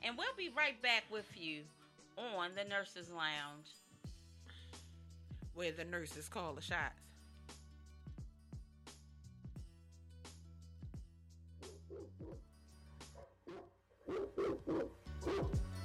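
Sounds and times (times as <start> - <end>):
speech: 0.0 - 3.8, 5.6 - 7.1
dogs barking and yipping: 13.1 - 15.6.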